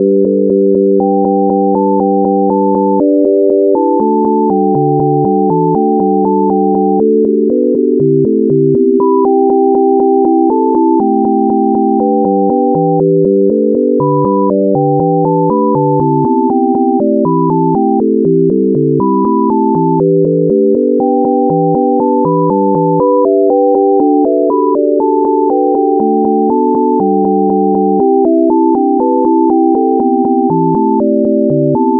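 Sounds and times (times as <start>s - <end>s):
sine wave major pentatonic scale: 0.0s - 31.9s.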